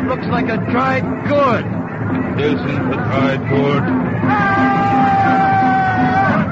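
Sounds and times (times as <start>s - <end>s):
speech: 0.1s - 4.8s
people shouting from a riverbank: 4.2s - 6.5s.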